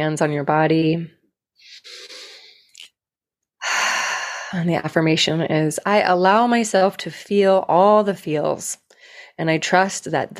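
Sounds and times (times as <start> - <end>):
speech: 0.0 - 2.1, 4.5 - 8.8, 9.4 - 10.3
deep breath during a guided relaxation: 1.6 - 2.8, 3.6 - 4.6.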